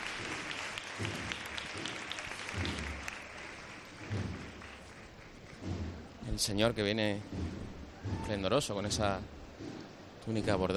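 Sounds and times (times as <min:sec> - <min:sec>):
audience applauding outdoors at a Holy Monday procession: 0:00.0 - 0:06.2
speech: 0:06.4 - 0:07.6, 0:08.3 - 0:09.4, 0:10.3 - 0:10.7.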